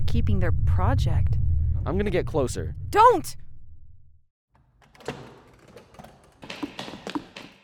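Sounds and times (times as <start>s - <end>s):
low rumble of a room in a bunker: 0.0s - 4.3s
speech: 0.1s - 3.4s
door of a room in a bunker rattling in its frame: 4.8s - 7.6s.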